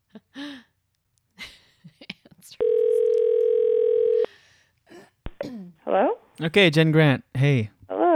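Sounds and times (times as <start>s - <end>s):
telephone dial tone placing a call: 2.6s - 4.3s
speech: 6.4s - 7.8s.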